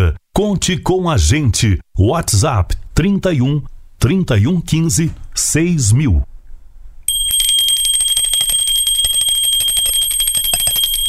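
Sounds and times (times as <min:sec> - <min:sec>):
speech: 0:00.4 - 0:06.3
small school bell ringing for recess: 0:07.1 - 0:11.0.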